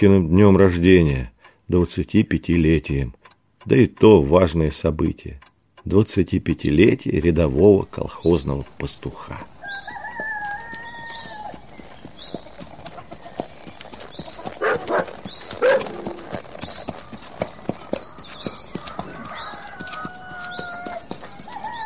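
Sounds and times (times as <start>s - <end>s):
speech: 0.0s - 9.9s
birds chirping: 5.9s - 21.8s
horse hooves clip-clopping at a brisk trot past a dilapidated water tower: 6.6s - 21.8s
roosters crowing: 9.5s - 12.0s, 14.6s - 16.4s, 17.1s - 21.8s.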